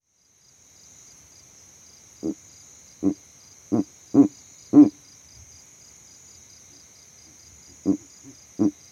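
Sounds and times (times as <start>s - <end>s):
high insect buzz: 0.1s - 8.9s
male Verreaux's eagle owl hooting from a tree in savanna: 3.0s - 5.0s, 7.8s - 8.8s.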